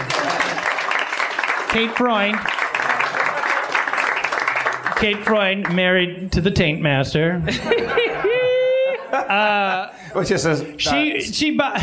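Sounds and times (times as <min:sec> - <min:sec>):
laughter: 0:00.0 - 0:00.8, 0:07.4 - 0:10.0
crowd applause: 0:00.0 - 0:05.8
speech: 0:01.7 - 0:02.6, 0:05.0 - 0:08.4, 0:09.3 - 0:11.8.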